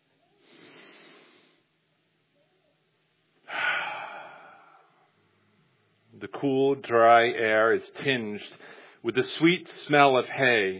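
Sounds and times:
person taking a deep breath outdoors: 0.4s - 1.7s, 3.5s - 5.2s, 8.6s - 9.0s
speech: 6.2s - 10.7s.

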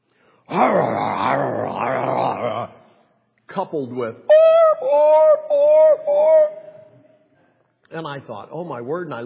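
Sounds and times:
speech: 0.5s - 2.8s, 3.5s - 6.6s, 7.9s - 9.2s
person imitating a dogfight with a rough growling snarl: 0.5s - 2.9s, 4.3s - 7.0s.

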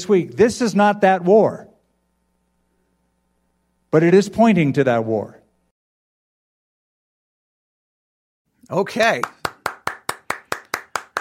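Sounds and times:
speech: 0.0s - 1.7s, 3.9s - 5.4s, 8.6s - 9.4s
hand clapping: 9.1s - 11.1s.

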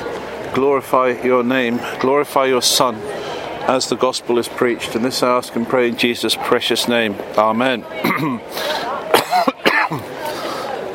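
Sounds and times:
faint steady murmur in a city square in Hull: 0.0s - 10.9s
speech: 0.5s - 10.0s
man clearing his throat outdoors in a city square in Hull: 9.2s - 10.1s.

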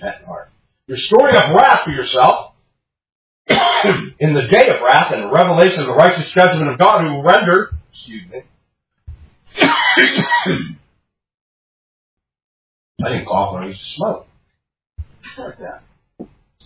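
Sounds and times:
speech: 0.0s - 0.3s, 0.9s - 2.5s, 3.6s - 8.5s, 9.5s - 10.8s, 13.0s - 14.3s, 15.3s - 16.3s
throat clearing: 3.5s - 4.2s, 9.6s - 10.8s
harsh coughing from a former smoker: 3.5s - 4.3s, 9.5s - 10.9s.

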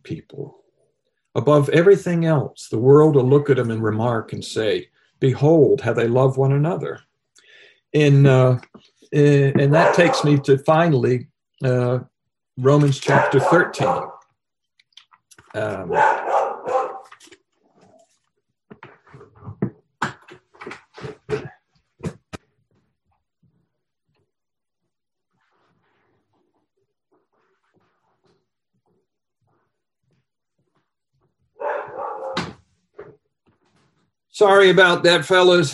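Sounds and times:
speech: 1.4s - 7.1s, 7.9s - 14.1s, 15.6s - 16.1s, 34.4s - 35.7s
escaped dog barking and whimpering: 9.6s - 10.4s, 13.1s - 14.2s, 15.9s - 17.1s, 31.6s - 32.5s.

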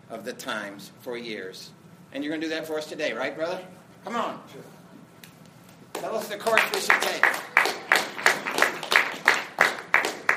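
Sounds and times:
speech: 0.1s - 4.8s, 6.0s - 7.5s
rhythmic audience applause in unison: 5.9s - 10.3s.

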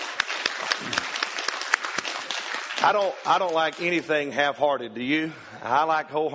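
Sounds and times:
crowd applauding together: 0.0s - 4.5s
speech: 2.8s - 6.3s.

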